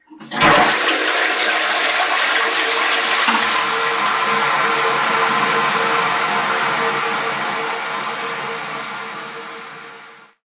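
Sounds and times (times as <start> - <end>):
WC flush ringtone: 0.1 - 10.4.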